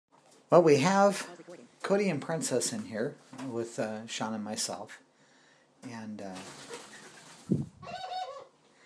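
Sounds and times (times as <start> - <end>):
speech: 0.5 - 5.0, 5.8 - 6.8
ringneck doves giving their laugh-like call: 6.5 - 8.6.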